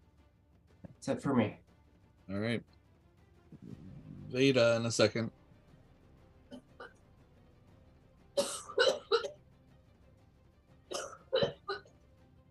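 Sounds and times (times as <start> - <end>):
speech: 1.0 - 1.6, 2.3 - 2.8, 3.6 - 5.4
person coughing during a tabletop role-playing game: 8.4 - 9.3, 10.9 - 11.8.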